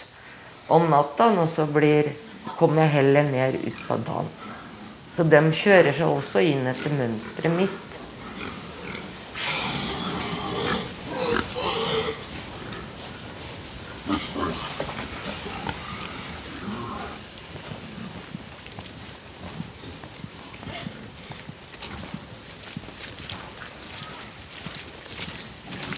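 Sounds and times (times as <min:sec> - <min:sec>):
rustle: 0:00.0 - 0:25.9
speech: 0:00.7 - 0:04.4, 0:05.2 - 0:07.9
pigs grunting and snorting on a farm: 0:00.7 - 0:25.9
pigs squealing on a farm: 0:02.4 - 0:17.4.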